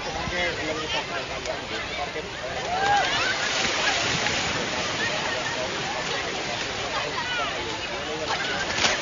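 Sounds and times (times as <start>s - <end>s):
indistinct voices of people murmuring: 0.0s - 9.0s
ocean waves breaking on the shore: 2.3s - 9.0s.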